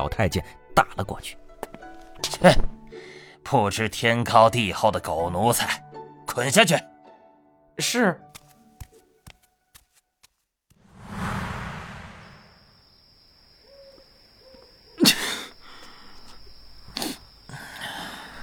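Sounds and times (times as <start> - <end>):
speech: 0.0 - 1.4, 2.4 - 6.9, 7.8 - 8.3
cold wind whooshing: 10.9 - 12.6
man sneezing outside a palace in cold wind: 15.0 - 15.6.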